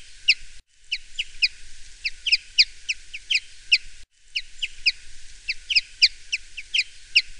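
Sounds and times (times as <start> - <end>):
common chaffinch singing: 0.0 - 7.3.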